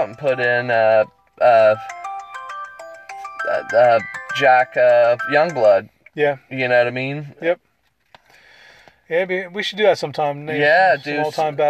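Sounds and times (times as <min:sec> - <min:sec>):
speech: 0:00.0 - 0:02.0, 0:03.5 - 0:07.7, 0:09.1 - 0:11.6
phone alarm bright electronic ringtone melody: 0:00.0 - 0:05.8.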